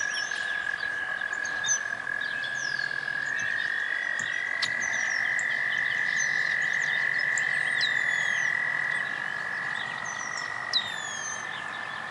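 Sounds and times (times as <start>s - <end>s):
birds whistling and chirping: 0.0s - 12.0s
frog chorus trilling at a pond: 0.0s - 12.0s.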